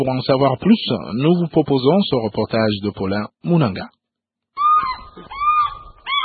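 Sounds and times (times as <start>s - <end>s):
speech: 0.0s - 4.0s
harsh cries of a bateleur eagle at the Lubumbashi zoo: 4.6s - 6.2s.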